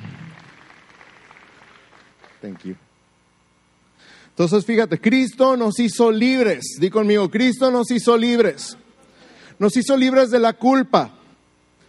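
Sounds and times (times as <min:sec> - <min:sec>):
audience applauding: 0:00.0 - 0:02.8
speech: 0:02.4 - 0:02.9, 0:04.4 - 0:08.8, 0:09.6 - 0:11.2.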